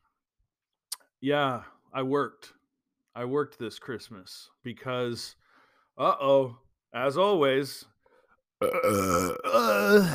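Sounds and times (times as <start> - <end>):
speech: 1.2 - 2.6, 3.2 - 5.4, 6.0 - 7.9, 8.6 - 10.1
loud drawn-out burp: 8.6 - 10.1.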